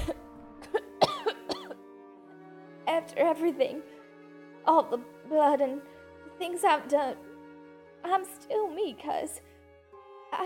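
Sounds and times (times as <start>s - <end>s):
wet gurgling throaty coughs: 0.0s - 1.8s
speech: 3.0s - 4.0s, 4.7s - 7.3s, 8.0s - 9.5s.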